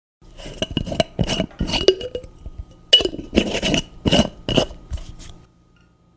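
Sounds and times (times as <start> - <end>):
jar lid opening: 0.4 - 4.8.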